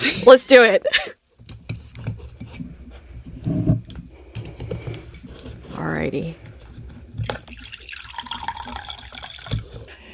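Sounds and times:
speech: 0:00.0 - 0:01.2, 0:05.8 - 0:06.4
wine pouring from a boxed wine tap into a glass: 0:07.2 - 0:09.7.

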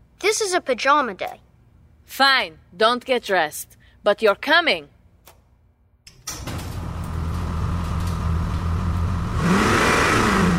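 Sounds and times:
speech: 0:00.3 - 0:01.5, 0:02.1 - 0:04.9
car engine starting and revving: 0:06.5 - 0:10.5.

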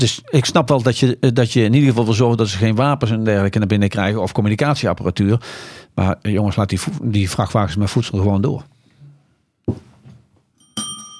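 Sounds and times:
speech: 0:00.0 - 0:08.7
small bell being pressed and ringing: 0:10.6 - 0:11.1.

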